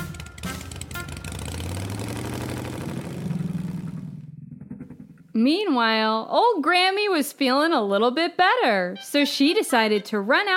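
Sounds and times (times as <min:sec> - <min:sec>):
small scooter engine revving: 0:00.0 - 0:05.2
speech: 0:05.4 - 0:10.5.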